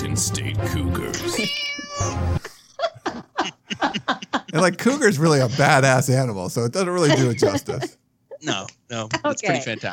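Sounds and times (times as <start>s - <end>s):
speech: 0.2s - 2.5s, 4.6s - 9.9s
cat meowing: 1.2s - 2.4s
laughter: 2.4s - 6.0s, 6.9s - 8.0s, 9.1s - 9.9s.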